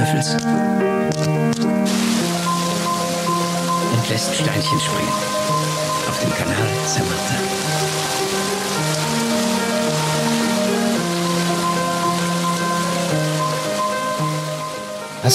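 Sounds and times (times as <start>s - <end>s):
slow instrumental melody: 0.0s - 15.3s
speech: 0.1s - 0.9s, 4.1s - 7.9s
loud steady rushing water: 0.4s - 15.3s.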